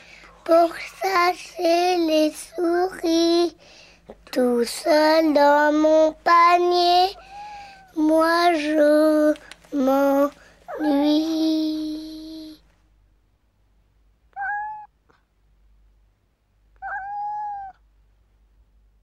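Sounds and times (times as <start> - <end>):
speech: 0.5 - 3.7, 4.4 - 7.3, 8.0 - 12.0
cat meowing: 14.3 - 14.9, 16.8 - 17.8.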